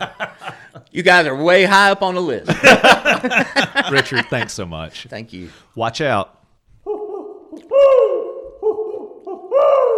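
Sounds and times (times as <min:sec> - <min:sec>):
speech: 0:00.9 - 0:06.4
laughter: 0:02.5 - 0:04.6
owl hoot sound effect: 0:06.9 - 0:09.9.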